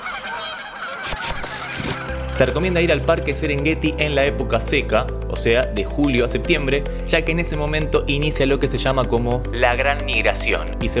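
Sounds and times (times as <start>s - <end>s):
geese honking: 0.0s - 2.6s
speech: 2.4s - 10.9s.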